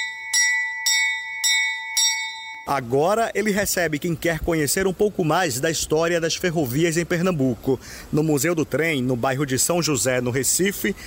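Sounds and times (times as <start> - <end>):
old railway station bell ringing at a train museum in Recife: 0.0 - 3.0
speech: 2.7 - 11.0.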